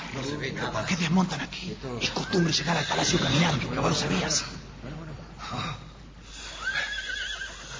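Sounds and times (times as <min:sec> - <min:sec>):
speech: 0:00.2 - 0:05.8
horse giving a short wavering whinny: 0:02.2 - 0:03.6, 0:06.6 - 0:07.7.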